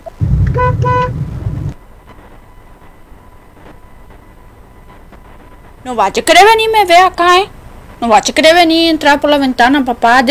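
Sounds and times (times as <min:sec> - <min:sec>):
car horn honking: 0:00.0 - 0:01.8
speech: 0:05.8 - 0:10.3.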